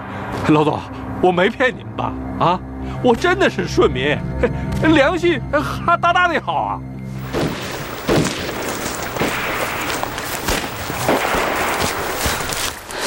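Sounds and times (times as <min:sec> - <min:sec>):
speech: 0:00.5 - 0:07.0
heavier booming shots: 0:07.2 - 0:12.5
dense continuous gunfire crackling: 0:07.2 - 0:13.0.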